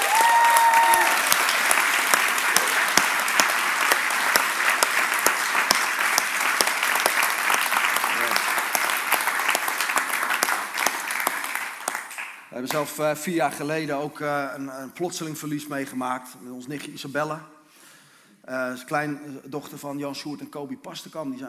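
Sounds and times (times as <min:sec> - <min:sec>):
audience applause: 0:00.0 - 0:12.5
speech: 0:12.7 - 0:17.6, 0:18.5 - 0:21.4.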